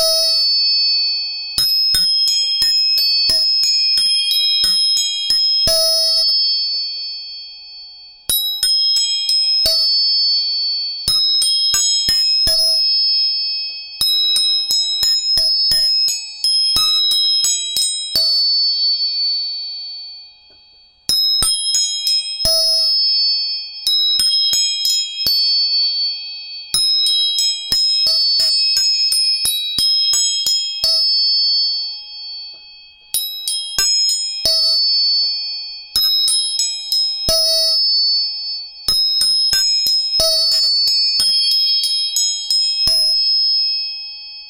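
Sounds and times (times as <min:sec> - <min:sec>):
tuning forks struck and ringing: 0:00.0 - 0:44.4.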